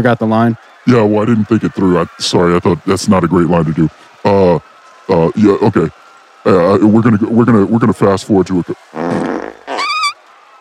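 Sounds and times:
speech: 0:00.0 - 0:09.2
loud fart: 0:08.9 - 0:10.2.

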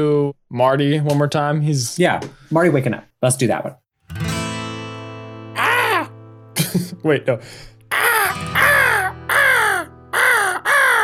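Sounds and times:
speech: 0:00.0 - 0:04.2, 0:06.7 - 0:08.6
crows cawing overhead: 0:05.6 - 0:06.1, 0:07.9 - 0:11.0.

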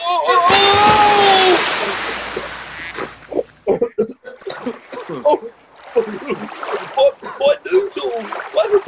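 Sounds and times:
person falling from a boat into water: 0:00.3 - 0:03.5, 0:04.6 - 0:07.3, 0:08.0 - 0:08.8
sloshing water: 0:00.3 - 0:03.7, 0:04.3 - 0:08.8.

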